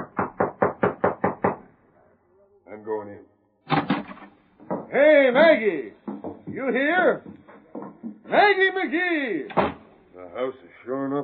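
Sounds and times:
knocking on a wooden door: 0:00.0 - 0:01.6, 0:03.7 - 0:04.9, 0:06.0 - 0:08.3
speech: 0:04.9 - 0:06.0, 0:06.6 - 0:07.3, 0:08.3 - 0:09.7, 0:10.3 - 0:11.2.

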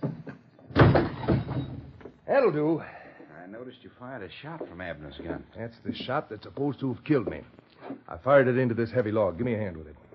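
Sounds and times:
wooden table knocked over in a room: 0:00.0 - 0:02.0
clattering rumbling tumble of a knocked-over table: 0:00.0 - 0:02.2
speech: 0:02.4 - 0:03.0, 0:03.6 - 0:10.0.

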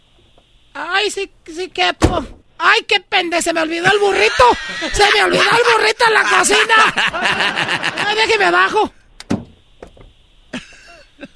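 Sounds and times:
speech: 0:01.0 - 0:09.0
door opening thud: 0:02.0 - 0:02.4, 0:09.2 - 0:10.1
laughter: 0:03.8 - 0:08.8, 0:10.6 - 0:11.3.

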